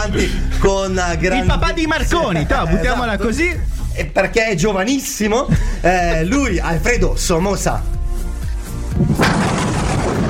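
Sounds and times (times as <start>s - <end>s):
speech: 0.0s - 8.0s
deep thunder rumbling with crackling roar: 8.9s - 10.2s.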